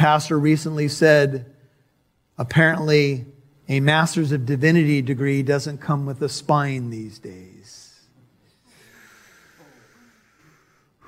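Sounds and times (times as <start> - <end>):
speech: 0.0 - 1.6, 2.4 - 7.8
deep breath taken by a preacher during a sermon: 8.4 - 11.0.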